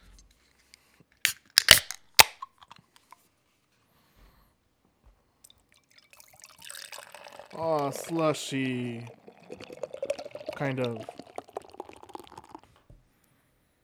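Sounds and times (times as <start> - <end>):
sharp metallic clicks and snaps of a beer can: 1.3 - 3.1
beer fizzing and trickling poured from a can: 5.5 - 12.7
speech: 7.6 - 9.2, 10.6 - 11.2.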